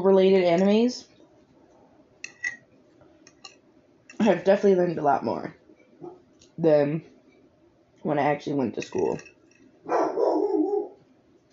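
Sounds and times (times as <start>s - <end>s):
speech: 0.0s - 1.1s, 4.2s - 7.1s, 8.0s - 9.3s
single loud drawn-out strained dog bark: 6.0s - 6.2s, 9.9s - 11.0s.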